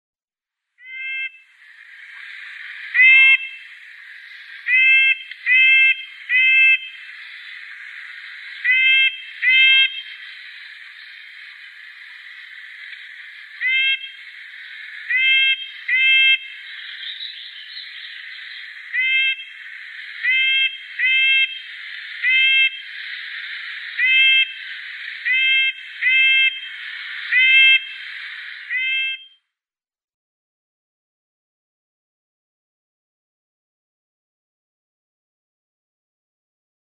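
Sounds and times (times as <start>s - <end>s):
Red-breasted Nuthatch calls: 0.8s - 29.3s.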